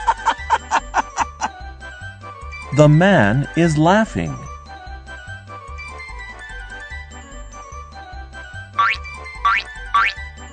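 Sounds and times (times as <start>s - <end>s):
laughter: 0.0s - 1.6s
bouncy low-pitched musical backing: 0.0s - 10.5s
speech: 2.8s - 4.4s
springy boing sound effect for a frog jumping: 8.8s - 10.2s.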